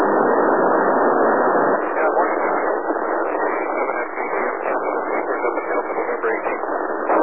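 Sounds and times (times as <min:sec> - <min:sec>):
narrowband static of a radio transmission relayed via satellite: 0:00.0 - 0:07.2
faint garbled voice in a radio transmission: 0:01.8 - 0:07.2.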